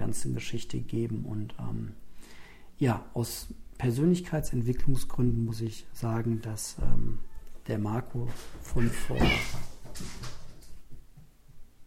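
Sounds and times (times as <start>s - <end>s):
speech: 0.1s - 10.4s
faint thumps and rustles: 8.2s - 11.7s
cats fighting with hissing and yowling: 8.8s - 9.7s.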